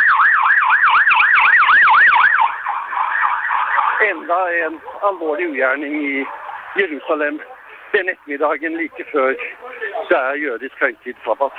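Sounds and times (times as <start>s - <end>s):
ambulance sirens at the scene of a serious attack in Jerusalem: 0.0s - 11.5s
speech: 4.0s - 11.5s.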